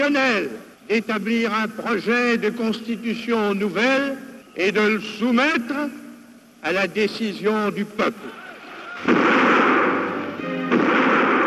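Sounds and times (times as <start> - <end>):
speech: 0.0 - 6.0, 6.6 - 8.4
ceremonial 21-gun cannon salute fired on the quays of the Seine: 9.0 - 11.4.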